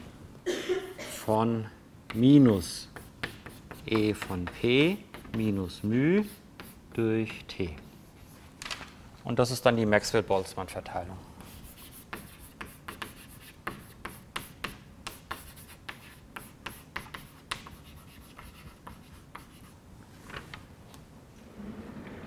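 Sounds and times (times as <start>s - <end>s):
speech: 1.3s - 2.9s, 3.9s - 6.4s, 7.0s - 7.8s, 9.2s - 11.3s
handwriting of a physics formula: 2.1s - 8.0s, 11.5s - 19.8s.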